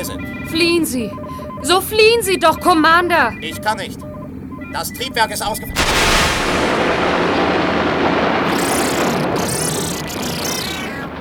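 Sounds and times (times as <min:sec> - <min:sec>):
speech: 0:00.0 - 0:04.1, 0:04.7 - 0:07.4
crackling rumbling debris: 0:05.4 - 0:11.1
massive spaceship explosion: 0:05.5 - 0:09.4.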